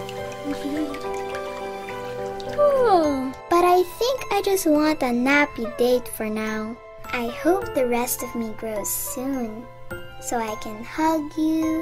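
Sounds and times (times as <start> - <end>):
light dripping: 0.0 - 3.6
sustained gentle musical tone with rising glide: 0.0 - 11.8
speech: 3.8 - 11.8.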